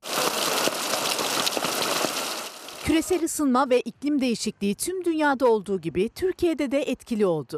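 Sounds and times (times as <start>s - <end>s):
heavy rain pouring down: 0.0s - 3.3s
speech: 2.9s - 7.5s.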